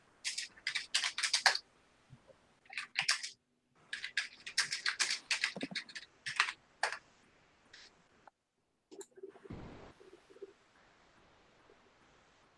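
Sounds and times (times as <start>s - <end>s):
crisp computer keyboard typing: 0.2s - 1.6s, 2.7s - 7.0s.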